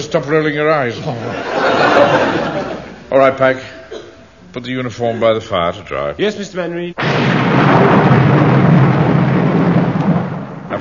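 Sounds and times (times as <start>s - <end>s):
laughter: 0.0s - 3.1s
speech: 0.1s - 3.8s, 4.5s - 7.8s
storm roar: 7.0s - 10.8s
thunder rumbling: 7.0s - 10.8s.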